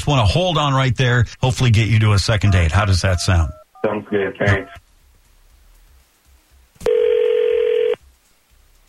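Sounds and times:
speech: 0:00.0 - 0:04.8
telephone ringback tone on an outgoing call: 0:06.9 - 0:08.0.

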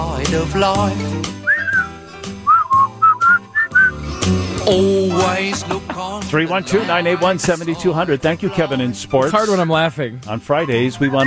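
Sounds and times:
steady instrumental backing music: 0:00.0 - 0:11.2
speech: 0:00.2 - 0:01.4, 0:04.3 - 0:11.2
man whistling a cheerful melody: 0:01.3 - 0:04.2
laughter: 0:04.9 - 0:08.4.

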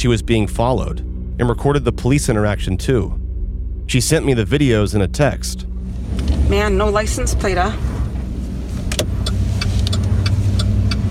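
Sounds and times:
speech: 0:00.0 - 0:03.2, 0:03.9 - 0:05.7, 0:06.5 - 0:07.9
truck engine rumbling: 0:00.0 - 0:11.0.

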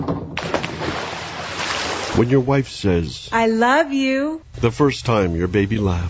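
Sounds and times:
body plunging into a swimming pool: 0:00.4 - 0:02.4
pool water sloshing and churning: 0:00.4 - 0:02.6
speech: 0:02.2 - 0:06.0.

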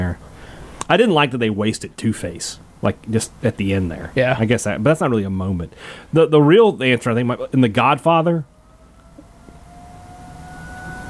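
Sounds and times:
speech: 0:00.9 - 0:08.5
outdoor warning sirens holding a steady drawn-out tone: 0:07.0 - 0:11.0.

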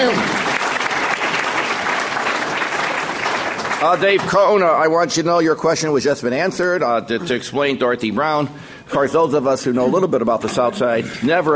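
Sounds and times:
roomful of people applauding: 0:00.0 - 0:04.6
speech: 0:03.8 - 0:11.5.

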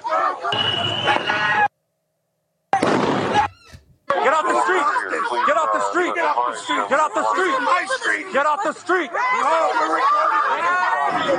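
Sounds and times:
noisy crowd with raised voices: 0:00.0 - 0:01.8, 0:02.8 - 0:11.3
fireworks popping and bursting: 0:02.7 - 0:03.6
laughter: 0:04.1 - 0:11.3
speech: 0:06.3 - 0:11.3.

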